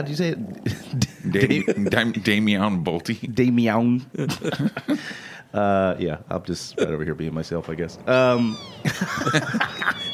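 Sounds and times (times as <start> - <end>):
speech: 0.0 - 10.1
laughter: 0.7 - 2.4, 4.2 - 5.2, 8.8 - 10.1
cat recording from the internet meowing: 8.1 - 10.1.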